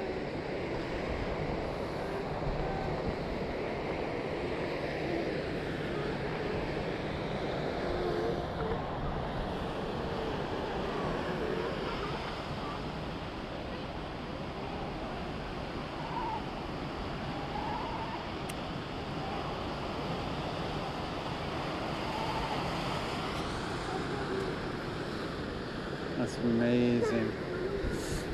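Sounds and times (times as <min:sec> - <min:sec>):
ocean surf washing against Bird Rock on 17 Mile Drive at sunset: 0:00.0 - 0:28.3
speech: 0:26.4 - 0:27.4.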